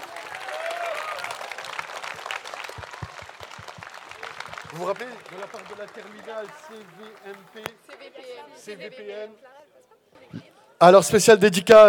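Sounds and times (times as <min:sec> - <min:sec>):
audience applause for young school performers: 0:00.0 - 0:07.8
crowd noise: 0:00.0 - 0:11.2
speech: 0:04.7 - 0:09.5, 0:10.3 - 0:11.8.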